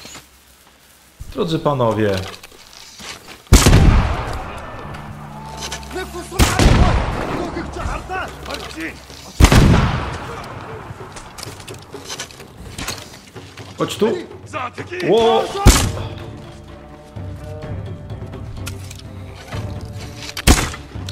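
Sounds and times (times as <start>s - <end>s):
speech: 1.4s - 2.4s, 8.6s - 9.2s, 13.8s - 16.4s
explosive arrows exploding in a video game: 3.5s - 4.6s, 6.4s - 8.1s, 9.4s - 10.6s.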